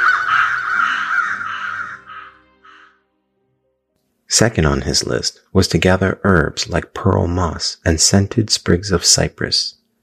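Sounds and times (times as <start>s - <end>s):
crows cawing: 0.0s - 3.0s
speech: 4.4s - 9.8s.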